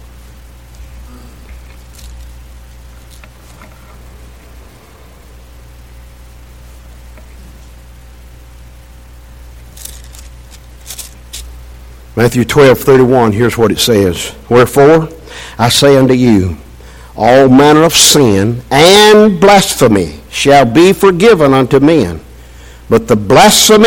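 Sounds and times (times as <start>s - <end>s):
low room hum: 0.0s - 23.8s
Bible pages being turned by an audience: 1.7s - 2.4s, 9.6s - 11.5s
speech: 12.2s - 16.6s, 17.2s - 22.3s, 22.9s - 23.8s.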